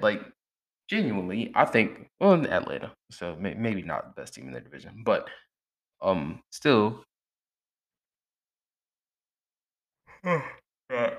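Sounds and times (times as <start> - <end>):
speech: 0.0 - 7.1, 10.2 - 11.1
tired person yawning: 10.1 - 11.1.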